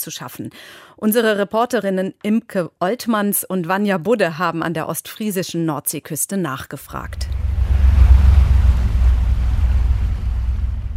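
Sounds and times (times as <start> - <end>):
speech: 0.0 - 7.4
wind over the North Sea: 6.8 - 10.9
boat engine rumbling on the open North Sea: 6.9 - 10.9
rushing North Sea water: 6.9 - 10.9.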